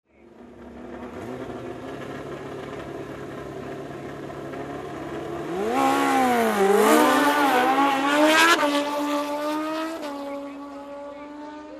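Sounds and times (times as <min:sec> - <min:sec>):
motocross motorcycle engines roaring: 0:00.1 - 0:11.7.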